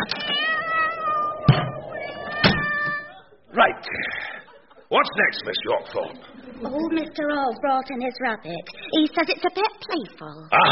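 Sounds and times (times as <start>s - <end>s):
cat meowing: 0.0s - 3.2s
speech: 4.9s - 10.7s.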